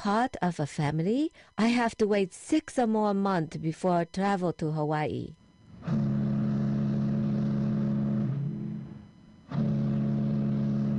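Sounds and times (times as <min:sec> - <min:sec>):
speech: 0:00.0 - 0:06.0
passenger ship engine droning at sea: 0:05.6 - 0:10.9.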